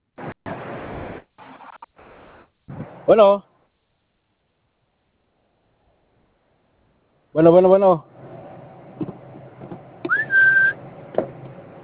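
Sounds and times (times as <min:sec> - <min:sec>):
speech: 0:03.1 - 0:03.5, 0:07.4 - 0:08.1
person whistling a single loud clear note: 0:10.1 - 0:10.8.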